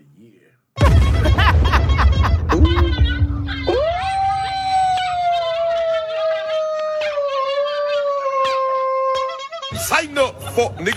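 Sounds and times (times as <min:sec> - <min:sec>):
laughter: 0:00.8 - 0:04.0, 0:10.0 - 0:10.9
dog howling: 0:02.6 - 0:09.5
speech: 0:10.6 - 0:10.9.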